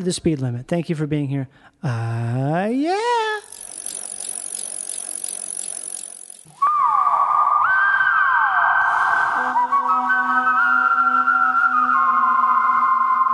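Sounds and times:
speech: 0:00.0 - 0:03.6
person whistling a tune: 0:06.5 - 0:13.3.

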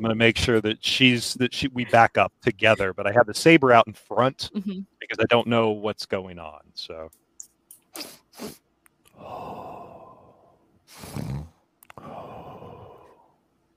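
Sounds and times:
speech: 0:00.0 - 0:07.2, 0:07.9 - 0:08.6
person imitating sharp sniffs: 0:07.9 - 0:08.6, 0:10.9 - 0:12.2
longer breathy inhales: 0:08.4 - 0:13.3.

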